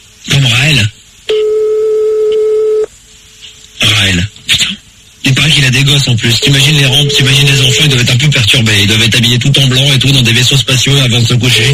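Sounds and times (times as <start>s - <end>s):
faint low hum: 0.0s - 11.7s
telephone line tone as a call is placed: 1.3s - 2.9s, 6.3s - 8.2s, 11.4s - 11.7s
speech: 5.7s - 11.7s.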